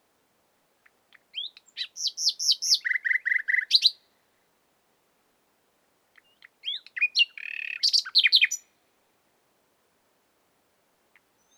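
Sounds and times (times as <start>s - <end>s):
Common nightingale Luscinia megarhynchos song with whistled slurs and trills: 1.3s - 4.0s, 6.2s - 8.7s.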